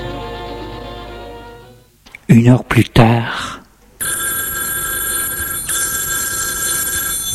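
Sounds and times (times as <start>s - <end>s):
speech: 2.4s - 3.4s
telephone bell ringing: 4.0s - 7.3s.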